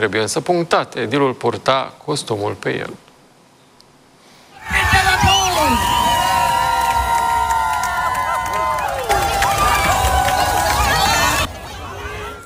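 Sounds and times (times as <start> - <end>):
speech: 0.0 - 3.1
children shouting and cheering at an outdoor public pool: 4.6 - 12.4
lively outdoor crowd at a public pool: 4.6 - 12.4.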